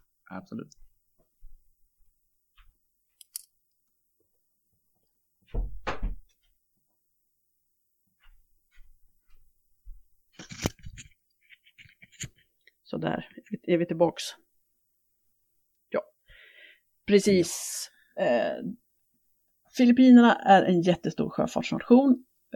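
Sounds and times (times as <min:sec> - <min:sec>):
speech: 0:00.3 - 0:00.9, 0:13.0 - 0:14.4, 0:17.1 - 0:18.8, 0:19.8 - 0:22.5
door pushed shut with a dull heavy thump: 0:05.5 - 0:06.2.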